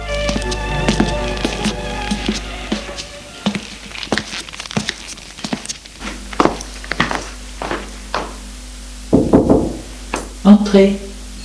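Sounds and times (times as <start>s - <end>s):
soft shuffling: 0.0s - 7.9s
knocking on a wooden bedroom door: 9.1s - 9.8s
speech: 10.5s - 11.1s.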